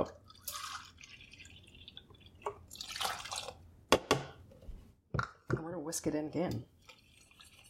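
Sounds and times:
milk being poured onto gluten-free crepe batter, trickling and splashing: 0.2 - 3.6, 6.8 - 7.6
speech: 5.9 - 6.8.

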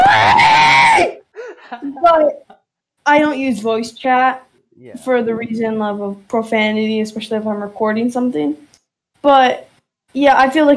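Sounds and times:
person imitating kids screaming: 0.0 - 1.2
speech: 3.1 - 10.7.

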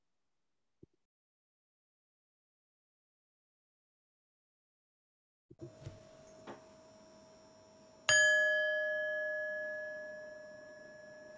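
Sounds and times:
meditation bell ringing: 6.2 - 11.3.

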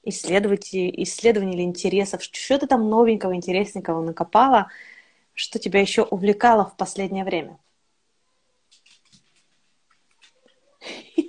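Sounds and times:
speech: 0.1 - 7.6
dog claws clicking on a parquet floor: 8.7 - 10.6.

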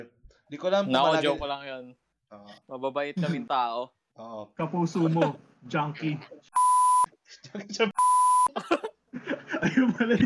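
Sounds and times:
speech: 0.0 - 6.7, 7.5 - 8.9, 9.6 - 10.2
loud steady censor beeps: 6.6 - 7.1, 8.0 - 8.5
laughter: 8.6 - 10.2.

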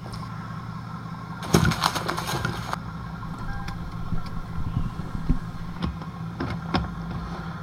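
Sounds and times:
car engine idling: 0.0 - 7.6
burst of broadband noise: 1.4 - 5.9.

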